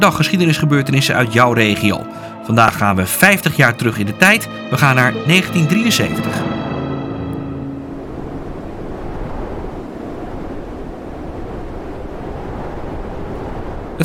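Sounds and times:
speech: 0:00.0 - 0:06.6
sea waves crashing during a storm: 0:03.5 - 0:14.0
faint tonal hum: 0:05.4 - 0:10.4
heavy storm wind roaring at sea in the Netherlands, wind force 12: 0:06.4 - 0:14.0
gusts buffeting the microphone: 0:07.9 - 0:14.0.

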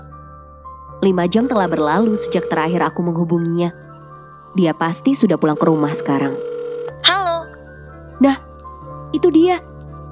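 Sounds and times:
speech: 0:01.0 - 0:03.8, 0:04.5 - 0:06.5, 0:08.2 - 0:08.5, 0:09.1 - 0:09.7
low hum of the telephone line: 0:01.2 - 0:03.1, 0:05.6 - 0:06.9
telephone keypad dual-tone beeps: 0:01.6 - 0:02.8, 0:05.6 - 0:07.0.

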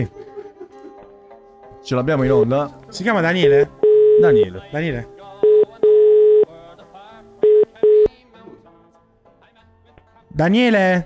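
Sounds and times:
speech: 0:00.0 - 0:00.2, 0:01.8 - 0:05.2, 0:10.4 - 0:11.0
buzzy telephone line tone on a live call: 0:03.8 - 0:04.5, 0:05.4 - 0:06.5, 0:07.4 - 0:08.1.

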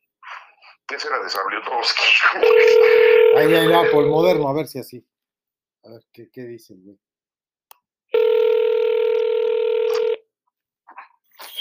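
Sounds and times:
speech: 0:00.9 - 0:05.1, 0:05.8 - 0:07.1
ringback tone of an outgoing phone call: 0:02.4 - 0:04.4, 0:08.1 - 0:10.2.

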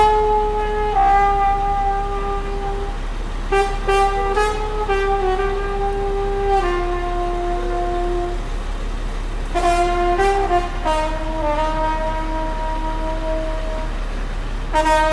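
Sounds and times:
loud continuous horn-like whistle in Mexico City: 0:00.0 - 0:08.6, 0:09.5 - 0:14.0, 0:14.7 - 0:15.1
steady low rumble: 0:00.0 - 0:15.1.

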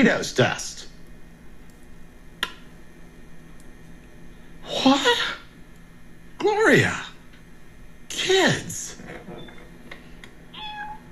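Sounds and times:
speech: 0:00.0 - 0:00.8, 0:04.7 - 0:05.4, 0:06.4 - 0:07.1, 0:08.2 - 0:08.9
cat meowing: 0:10.5 - 0:11.1.

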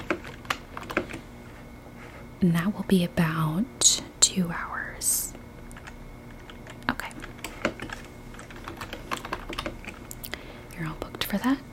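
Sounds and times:
soft keyboard typing during a resort check-in booking: 0:00.0 - 0:01.2, 0:05.7 - 0:10.2
faint hum: 0:00.0 - 0:11.7
speech: 0:02.4 - 0:05.3, 0:11.3 - 0:11.7.

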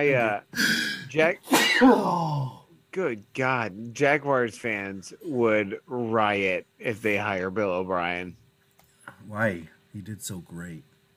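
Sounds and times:
speech: 0:00.0 - 0:08.4, 0:09.2 - 0:10.9
person sneezing: 0:00.6 - 0:02.6.

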